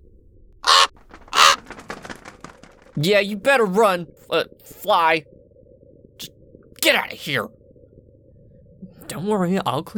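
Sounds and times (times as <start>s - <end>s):
raven cawing and croaking: 0.6s - 3.0s
speech: 3.0s - 5.4s, 6.2s - 7.6s, 9.1s - 9.9s.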